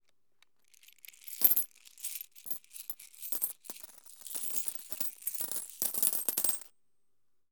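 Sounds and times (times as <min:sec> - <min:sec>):
coins: 0:00.7 - 0:06.7.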